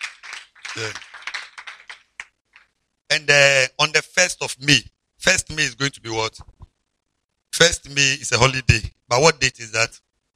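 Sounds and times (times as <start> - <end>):
crowd clapping hands in applause: 0.0 - 2.7
speech: 0.8 - 1.1, 3.1 - 6.5, 7.6 - 10.0.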